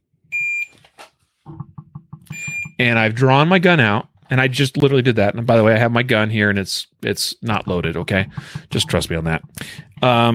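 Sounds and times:
soft low rhythmic thumps: 1.5 - 3.9, 5.1 - 10.3
shot timer high-pitched electronic beep: 2.3 - 2.8
speech: 2.8 - 10.3.

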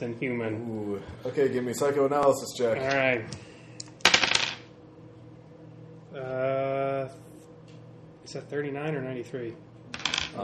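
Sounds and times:
speech: 0.0 - 3.5, 6.2 - 7.2, 8.3 - 9.7
single die rattling and clattering across a hard surface: 4.0 - 4.6, 10.0 - 10.4.

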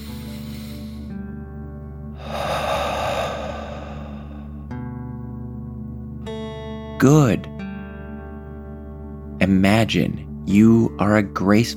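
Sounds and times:
deep breath in and out through the mouth during a children's meditation: 0.0 - 1.2, 2.1 - 4.8
speech: 7.0 - 7.5, 9.4 - 11.7.

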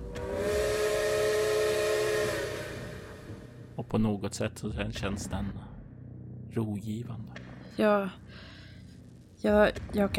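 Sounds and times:
train whistle blowing: 0.0 - 3.7
speech: 3.8 - 5.7, 6.6 - 8.5, 9.4 - 10.1.

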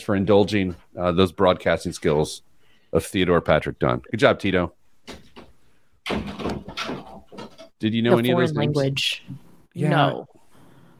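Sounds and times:
speech: 0.0 - 5.2, 6.1 - 6.4, 7.8 - 10.4
door pushed shut with a loud thud: 6.0 - 7.6.

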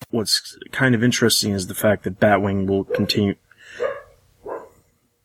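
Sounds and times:
speech: 0.3 - 3.5
dog barking: 2.9 - 4.8.

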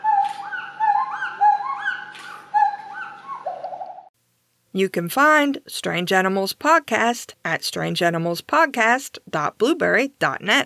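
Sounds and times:
mated pair of pileated gibbons singing a duet: 0.0 - 3.5
speech: 4.8 - 10.6.

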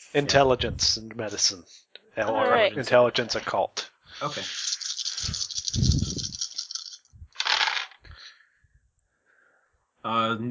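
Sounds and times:
speech: 0.1 - 6.0, 10.0 - 10.4
seven dice rattling and tumbling across a table during a tabletop game: 4.5 - 8.1.

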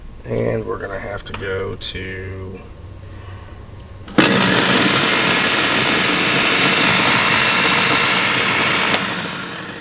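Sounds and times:
speech: 0.2 - 2.8
electric blender whirring: 4.1 - 9.7.

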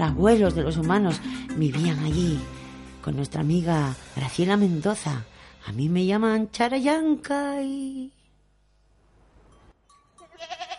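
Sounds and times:
speech: 0.0 - 8.2
goat or sheep quavering bleat: 10.2 - 10.7.

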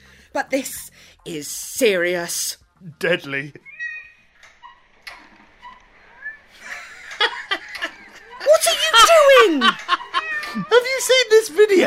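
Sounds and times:
speech: 0.4 - 3.7, 9.5 - 11.8
laughter: 6.6 - 10.7
cat yowling: 8.9 - 10.7
cat with its claw stuck in a ceiling fan meowing: 10.0 - 10.8.

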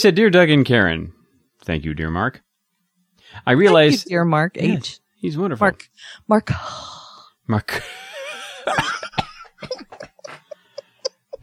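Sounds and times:
speech: 0.0 - 2.5, 3.3 - 10.0
laugh-like voiced sound: 3.6 - 4.0, 9.6 - 11.4
fit of harsh coughing: 8.4 - 11.4.

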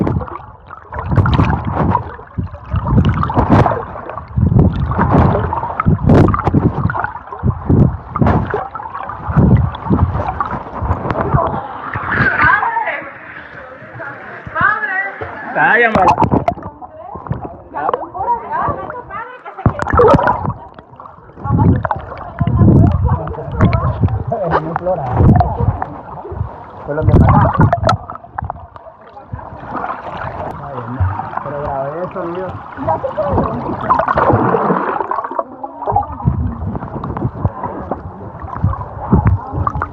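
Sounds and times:
people swimming through an underground cave river splashing: 0.0 - 39.9
indistinct voices: 11.0 - 39.9.

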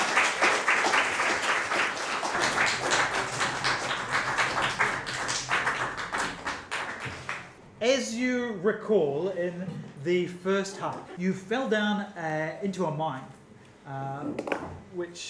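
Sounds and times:
audience applause: 0.0 - 7.6
speech: 7.8 - 15.2.

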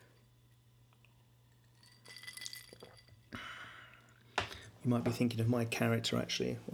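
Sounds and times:
whiskey glass clinking: 1.7 - 3.2
speech: 4.8 - 6.7.

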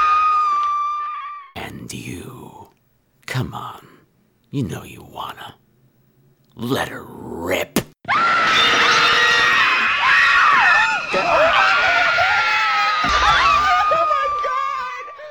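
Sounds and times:
several high shrill voices screaming: 0.0 - 1.5, 8.1 - 15.3
speech: 1.9 - 2.7, 3.4 - 3.9, 4.5 - 5.5, 6.6 - 7.8.

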